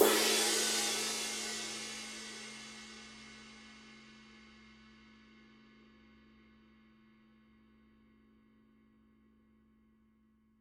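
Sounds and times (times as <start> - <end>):
medium flat ride cymbal edge hit: 0.0 - 3.1.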